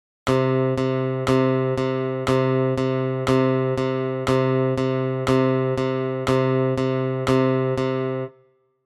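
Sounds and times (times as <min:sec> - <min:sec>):
rhythm guitar playing eighth notes: 0:00.3 - 0:08.3.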